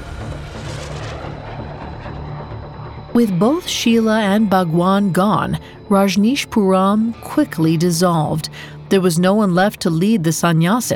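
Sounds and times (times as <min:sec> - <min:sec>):
jet airplane flying overhead: 0:00.0 - 0:05.9
speech: 0:03.2 - 0:10.9.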